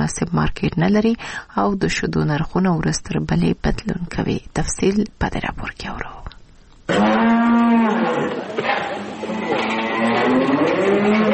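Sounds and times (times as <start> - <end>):
speech: 0.0 - 6.3, 6.9 - 8.9
cow mooing on a small dairy farm in Kandahar: 6.9 - 11.3.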